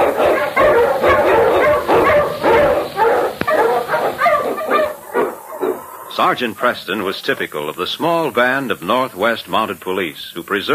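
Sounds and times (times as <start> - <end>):
sled dog barking and yipping: 0.0 - 7.0
speech: 6.2 - 10.7.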